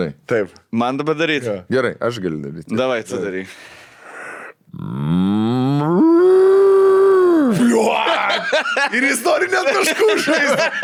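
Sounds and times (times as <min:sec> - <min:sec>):
speech: 0:00.0 - 0:03.8, 0:04.7 - 0:06.5, 0:07.5 - 0:10.8
person imitating a cow mooing during a contest: 0:04.7 - 0:07.7
laughter: 0:07.6 - 0:10.8.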